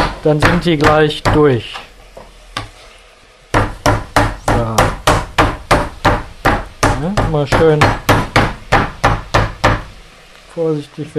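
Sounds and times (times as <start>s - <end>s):
meat mallet pounding meat thin: 0.0s - 1.5s, 3.5s - 9.9s
speech: 0.2s - 1.8s, 7.0s - 8.0s, 10.6s - 11.1s.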